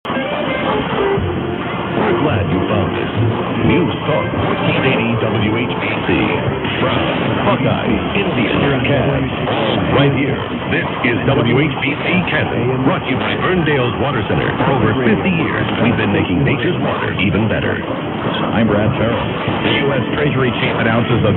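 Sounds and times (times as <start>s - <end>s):
1480 medium wave radio station reception from Canton: 0.1s - 21.3s.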